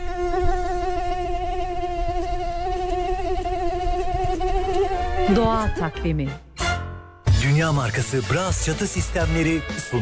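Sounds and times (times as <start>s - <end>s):
female mosquito wing buzz pitched at the note A: 0.0s - 5.4s
speech: 5.3s - 6.4s, 7.4s - 10.0s.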